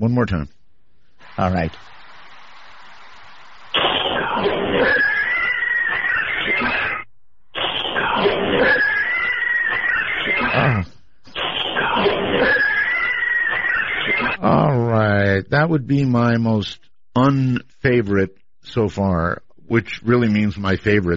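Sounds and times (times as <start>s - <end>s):
speech: 0.0s - 0.6s, 1.4s - 1.9s, 15.4s - 21.1s
cat letting out long harsh screams: 3.8s - 7.0s, 7.6s - 14.4s.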